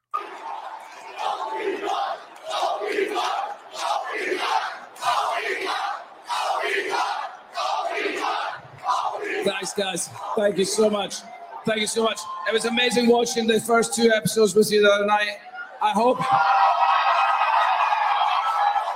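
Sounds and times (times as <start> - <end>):
large crowd cheering and whooping: 0.0 - 4.2, 9.4 - 13.5, 15.5 - 18.9
crowd excited shouting: 0.0 - 13.5, 15.4 - 18.9
speech: 9.8 - 16.6.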